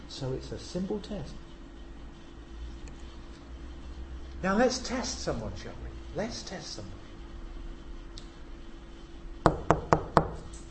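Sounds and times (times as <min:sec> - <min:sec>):
faint hum: 0:00.0 - 0:10.6
speech: 0:00.1 - 0:01.5, 0:04.4 - 0:07.0
sharp knocks on a door: 0:09.5 - 0:10.4.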